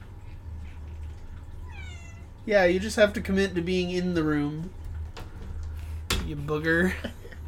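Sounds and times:
steady low hum: 0.0s - 7.4s
cat meowing as it is let into the room: 1.6s - 2.4s
speech: 2.4s - 4.8s, 6.3s - 7.2s.

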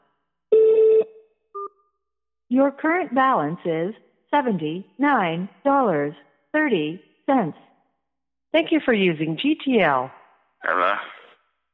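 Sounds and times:
automated phone buzzy beep: 0.5s - 1.8s
speech: 2.5s - 7.7s, 8.5s - 11.2s.

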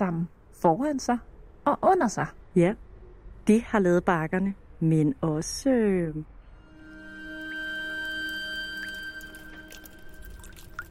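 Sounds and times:
speech: 0.0s - 2.8s, 3.4s - 6.4s
water from melting ice trickling: 6.8s - 10.8s
water from melting ice dripping: 7.3s - 10.8s.

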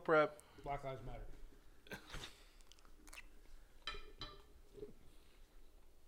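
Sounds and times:
speech: 0.0s - 2.0s
wet chewing of a fertilized duck egg: 1.9s - 3.8s.

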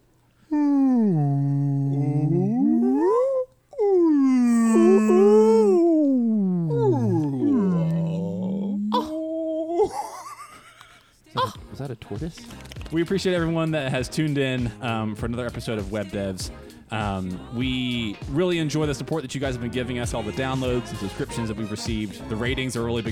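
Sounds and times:
human voice imitating whale calls: 0.5s - 9.9s
speech: 11.9s - 23.1s.

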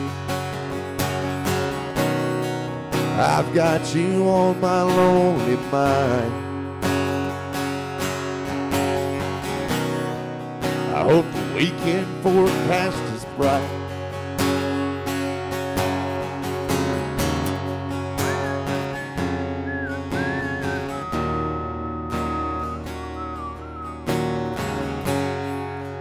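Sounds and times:
strumming: 0.0s - 25.9s
speech: 3.2s - 6.4s, 11.1s - 13.8s
person whistling a melody: 18.2s - 24.2s
band playing loudly: 18.2s - 24.4s.

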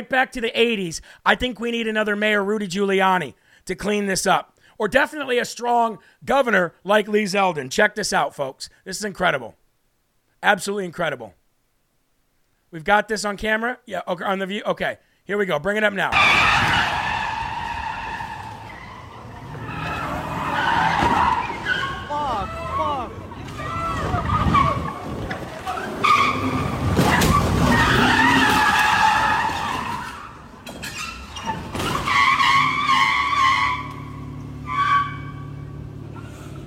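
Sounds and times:
speech: 0.0s - 9.6s, 10.4s - 11.4s, 12.7s - 16.5s
car tires squealing and skidding: 16.1s - 36.6s
car ramming another car with a crunch: 16.2s - 22.1s, 23.3s - 33.1s
car engine roaring: 16.2s - 36.6s
indistinct voices: 21.9s - 25.2s.

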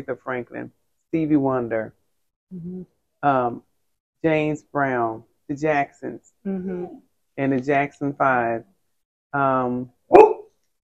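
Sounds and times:
speech: 0.0s - 8.7s, 9.3s - 10.3s
dog barking: 10.1s - 10.5s.

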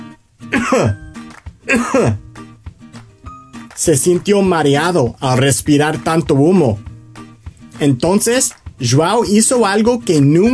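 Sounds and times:
loud harsh throaty coughing: 0.5s - 2.2s
speech: 0.7s - 1.0s, 1.7s - 2.2s, 3.8s - 6.9s, 7.8s - 10.5s.

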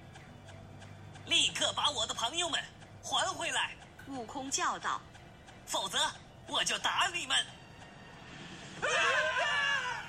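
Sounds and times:
speech: 1.6s - 5.1s, 5.7s - 7.6s, 8.8s - 9.5s
little demons screaming as they flee in a cave: 8.8s - 10.0s.

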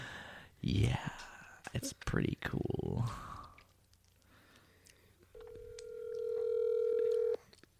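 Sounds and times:
faint low noise: 0.0s - 7.7s
speech: 0.6s - 3.3s
cell phone calling tone while placing an outgoing call: 5.4s - 7.4s.

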